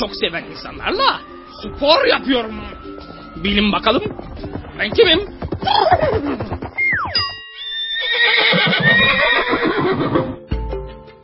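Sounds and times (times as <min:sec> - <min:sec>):
speech: 0:00.0 - 0:06.5
horse neighing: 0:02.2 - 0:10.4.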